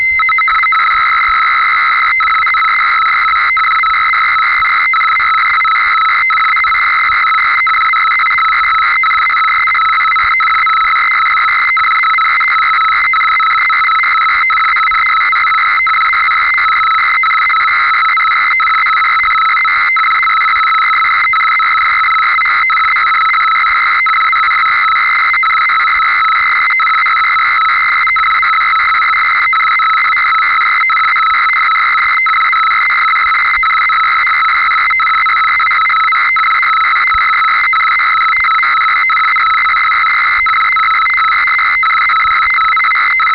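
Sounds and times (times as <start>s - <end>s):
synthesizer science fiction space telemetry computer sounds: 0.2s - 43.3s.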